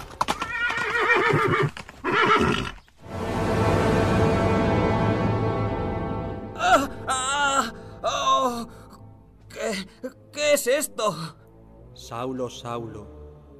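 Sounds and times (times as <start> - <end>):
horse hooves clopping: 0.0 - 3.0
horse neighing: 0.3 - 2.8
speech: 1.3 - 1.8, 10.7 - 11.4, 12.0 - 13.2
sustained rumbling swell: 3.0 - 9.5.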